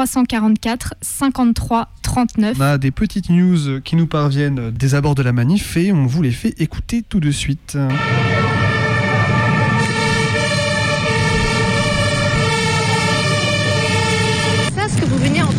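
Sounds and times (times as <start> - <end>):
speech: 0.0 - 8.4
sirens of military armoured vehicles and police vehicles near a street protest: 7.9 - 15.5.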